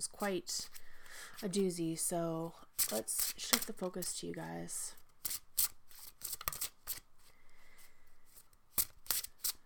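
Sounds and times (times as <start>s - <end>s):
speech: 0.0s - 0.8s, 1.4s - 5.4s
deck of cards being shuffled: 2.8s - 4.2s, 5.2s - 7.1s, 8.3s - 9.6s.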